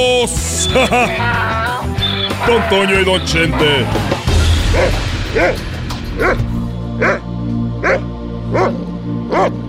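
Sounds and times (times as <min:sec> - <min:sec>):
speech: 0:00.2 - 0:01.6, 0:02.5 - 0:04.2, 0:04.7 - 0:07.2, 0:07.9 - 0:09.6
laughter: 0:00.3 - 0:04.3
dog barking with high yelping barks: 0:07.0 - 0:09.6.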